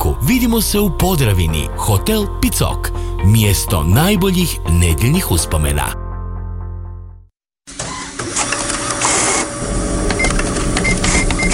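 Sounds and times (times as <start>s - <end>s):
speech: 0.3s - 6.0s
printer out of ink whirring and rattling: 7.7s - 11.5s.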